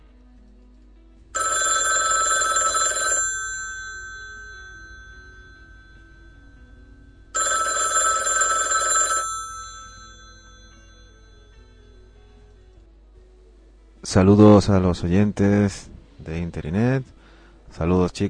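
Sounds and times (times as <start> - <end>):
telephone ringing while a call is being placed: 1.4 - 12.4
speech: 14.1 - 18.2.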